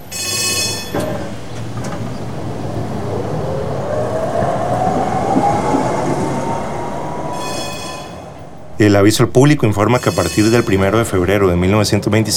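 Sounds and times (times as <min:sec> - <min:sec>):
thin metallic tram wheel squeal: 0:00.0 - 0:02.2, 0:07.2 - 0:11.6
bright tram bell ringing: 0:00.0 - 0:02.7, 0:07.0 - 0:12.3
tram rumbling along its rails: 0:00.0 - 0:12.3
speech: 0:08.8 - 0:12.3.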